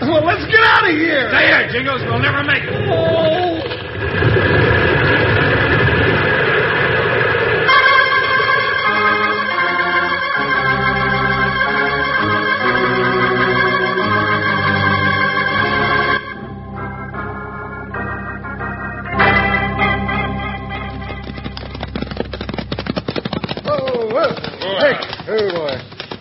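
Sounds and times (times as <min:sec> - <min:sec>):
speech: 0:00.1 - 0:03.4
excited voices: 0:00.1 - 0:03.8
avalanche crashing down a mountainside: 0:01.3 - 0:09.6
dramatic music with held chords: 0:07.7 - 0:21.3
horse hooves galloping: 0:19.9 - 0:26.2.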